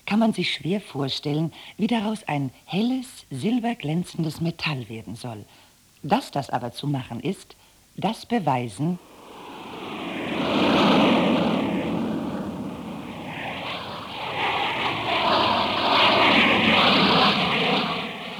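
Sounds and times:
speech: 0:00.1 - 0:09.1
airplane engine drone: 0:09.0 - 0:18.3.

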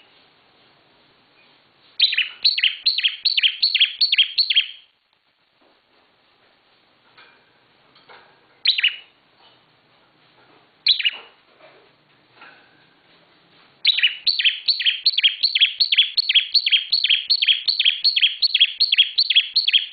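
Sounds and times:
Bar-winged prinia song: 0:02.0 - 0:05.0, 0:13.9 - 0:19.9.

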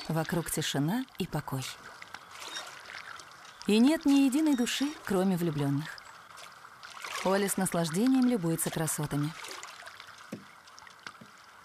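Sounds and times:
speech: 0:00.1 - 0:02.0, 0:03.7 - 0:06.0, 0:07.2 - 0:09.4
rowboat being moored against a wooded lakeshore: 0:10.2 - 0:11.4.

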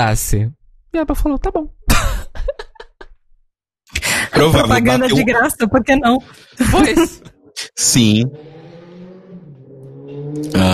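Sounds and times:
speech: 0:00.0 - 0:02.6, 0:03.9 - 0:08.6, 0:10.3 - 0:10.7
laughter: 0:01.9 - 0:03.1, 0:04.0 - 0:08.3
motorcycle engine passing by outside: 0:08.0 - 0:10.7.

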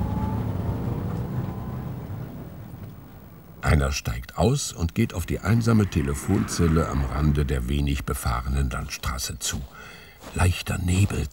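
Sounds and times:
van engine rumble on a quiet country road: 0:00.0 - 0:06.3
speech: 0:03.6 - 0:11.3.

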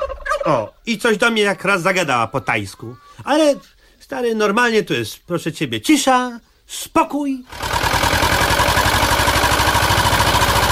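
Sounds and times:
speech: 0:00.4 - 0:07.8
motorboat with an Ursus engine entering a bay, chugging: 0:07.6 - 0:10.7.

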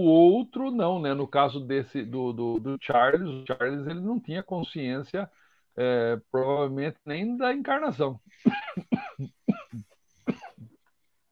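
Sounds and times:
speech: 0:00.0 - 0:09.8
person coughing in harsh, throaty bursts: 0:08.4 - 0:10.8.

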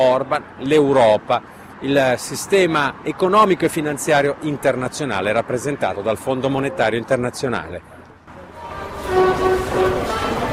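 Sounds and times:
speech: 0:00.0 - 0:08.0
yellow Line 1 underground metro train rumbling: 0:08.3 - 0:10.5.

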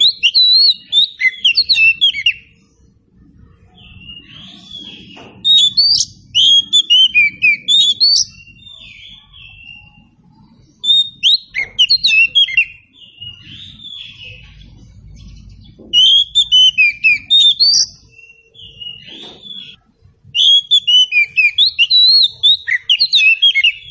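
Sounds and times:
Oriental Magpie-Robin song: 0:00.0 - 0:02.9, 0:03.6 - 0:23.8.

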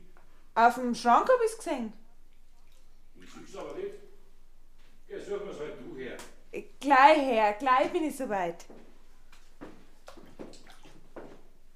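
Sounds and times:
speech: 0:00.6 - 0:02.0, 0:05.1 - 0:08.8
steady watery background: 0:00.9 - 0:04.5, 0:09.2 - 0:11.7
hot water splashing and sloshing as feet are washed: 0:02.3 - 0:03.9, 0:09.3 - 0:11.5.

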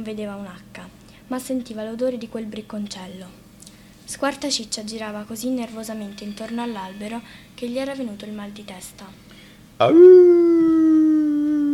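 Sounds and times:
speech: 0:00.0 - 0:03.4, 0:04.1 - 0:10.4
wolf howling: 0:09.8 - 0:11.7.

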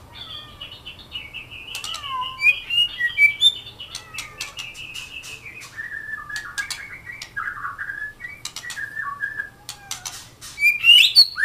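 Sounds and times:
Oriental magpie-robin song: 0:00.1 - 0:11.4
sharp clicks: 0:01.7 - 0:02.0, 0:03.9 - 0:07.5, 0:08.3 - 0:10.3.

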